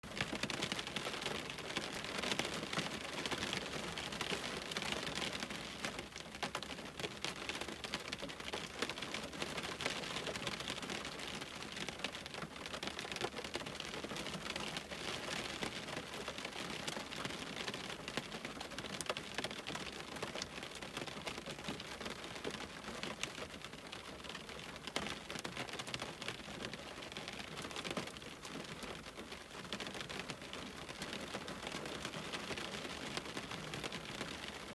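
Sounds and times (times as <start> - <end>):
heavy rain hitting a window: 0.1 - 34.7.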